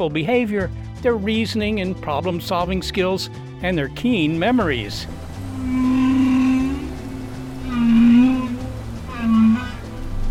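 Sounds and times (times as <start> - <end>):
speech: 0.0 - 5.2
steady watery hiss and low rumble: 3.8 - 10.2
low moaning whale calls with harmonic overtones: 5.4 - 10.2.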